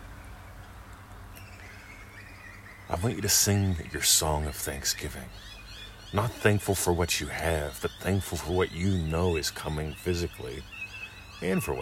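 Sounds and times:
faint bird song with thin high whistling notes: 0.0 - 11.8
speech: 2.9 - 10.7, 11.4 - 11.8.

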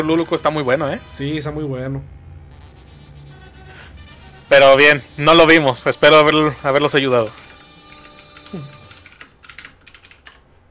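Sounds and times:
speech: 0.0 - 2.2, 4.5 - 7.4, 8.5 - 8.7
computer keyboard typing: 6.7 - 10.5.

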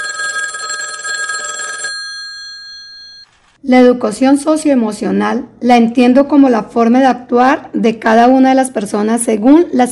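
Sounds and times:
telephone bell ringing with an incoming call: 0.0 - 3.5
speech: 3.6 - 9.9.

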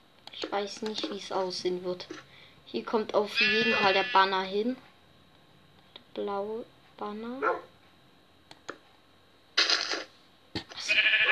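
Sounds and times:
speech: 0.5 - 4.9, 6.2 - 7.7
sheep bleating: 3.4 - 4.3, 10.8 - 11.3.

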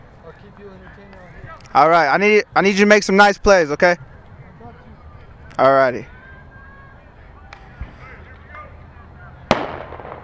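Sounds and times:
steady murmur at a ballpark: 0.0 - 10.2
speech: 0.5 - 4.1, 5.6 - 6.1
fireworks going off outdoors at a ballpark: 9.5 - 10.2.

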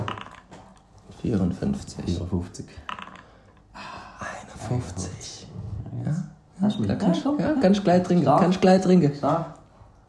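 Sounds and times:
dice tumbling across a hard surface: 0.0 - 0.8, 2.8 - 3.3
speech: 1.2 - 3.0, 4.7 - 9.6.

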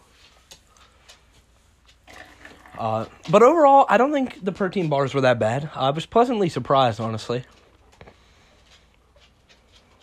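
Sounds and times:
soft clicks and light clatters: 0.1 - 2.0, 7.2 - 10.0
liquid pouring and gurgling into a cup: 2.0 - 3.3
speech: 2.8 - 7.6.

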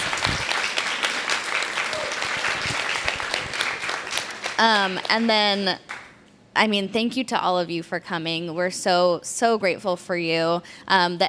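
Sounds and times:
audience applause: 0.0 - 6.1
speech: 4.6 - 5.9, 6.6 - 11.2.

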